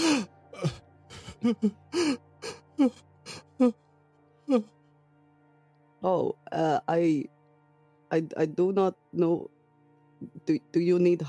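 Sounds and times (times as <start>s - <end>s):
voice imitating choked shocked sobbing: 0.0s - 3.8s, 4.5s - 4.7s
speech: 1.4s - 2.2s, 2.8s - 3.8s, 4.5s - 4.8s, 6.0s - 7.4s, 8.1s - 9.6s, 10.2s - 11.2s.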